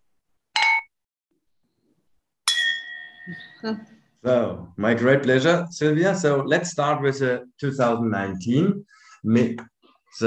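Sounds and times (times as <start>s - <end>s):
wine glasses clinking in a toast at a wine tasting: 0.6s - 0.9s, 2.5s - 3.7s
speech: 3.3s - 10.2s.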